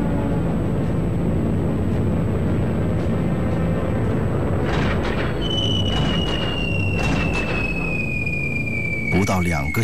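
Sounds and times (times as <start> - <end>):
heavy bomber aircraft engines droning overhead: 0.0 - 9.8
high falling whistle: 5.4 - 9.8
speech: 9.3 - 9.8.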